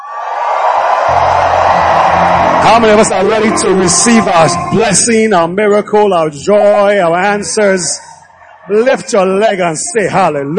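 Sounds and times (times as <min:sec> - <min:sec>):
church congregation shouting and cheering: 0:00.0 - 0:05.5, 0:06.4 - 0:10.4
speech: 0:02.8 - 0:08.1, 0:08.7 - 0:10.5.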